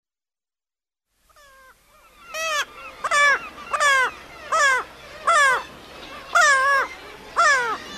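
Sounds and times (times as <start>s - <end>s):
Black-legged kittiwake giving nasal harmonic wailing calls: 1.3s - 7.9s.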